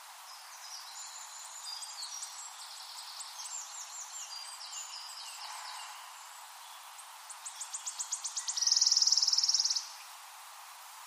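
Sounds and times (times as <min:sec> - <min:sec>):
wood warbler song with ticks and shivering trill: 0:00.0 - 0:10.4.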